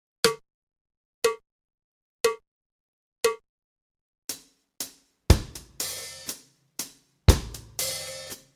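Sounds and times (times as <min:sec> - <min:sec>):
drums practice: 0:04.3 - 0:08.5.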